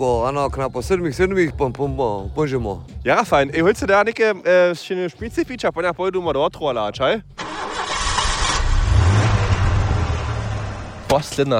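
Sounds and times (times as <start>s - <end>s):
speech: 0.0s - 7.4s, 11.1s - 11.5s
car engine roaring to life and revving: 7.4s - 11.1s.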